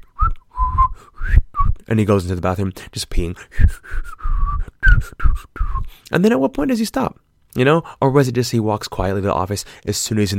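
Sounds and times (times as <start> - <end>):
person whistling a short wavering tune: 0.0 - 1.8, 3.6 - 6.0
speech: 1.9 - 4.3, 4.9 - 10.3.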